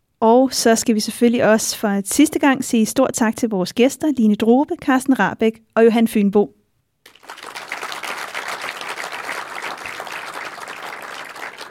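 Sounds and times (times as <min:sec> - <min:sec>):
speech: 0:00.4 - 0:06.6
sustained applause from a sizable crowd: 0:07.1 - 0:11.6.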